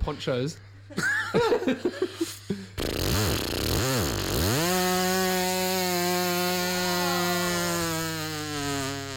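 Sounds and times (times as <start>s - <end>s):
speech: 0.0s - 2.6s
laughter: 0.9s - 2.7s
voice imitating a weed whacker: 2.8s - 9.1s.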